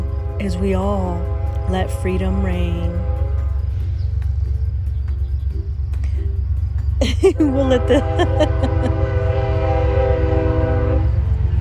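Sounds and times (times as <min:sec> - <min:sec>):
train horn blast: 0:00.0 - 0:03.9, 0:07.5 - 0:11.4
passing train rumbling: 0:00.0 - 0:11.5
speech: 0:00.4 - 0:03.2, 0:07.2 - 0:08.7
laughter: 0:07.0 - 0:09.1.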